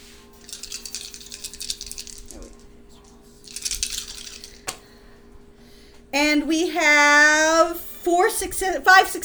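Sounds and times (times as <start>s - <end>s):
several dice shaken and rolled: 0.4s - 2.7s, 3.4s - 4.6s
speech: 6.2s - 9.2s.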